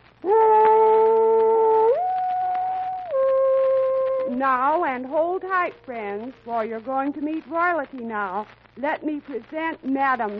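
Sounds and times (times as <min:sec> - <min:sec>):
human voice imitating a dog howling: 0:00.2 - 0:04.4
speech: 0:04.4 - 0:10.3.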